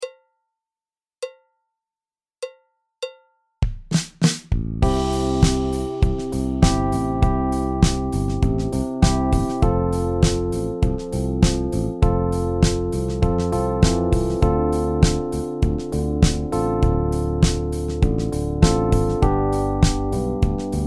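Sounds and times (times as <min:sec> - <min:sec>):
backing track music in the key of C: 0:04.8 - 0:20.8.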